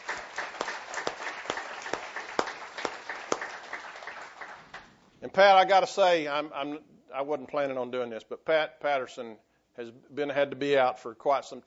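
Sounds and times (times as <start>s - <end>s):
church audience applauding: 0.0s - 4.9s
speech: 5.2s - 11.6s.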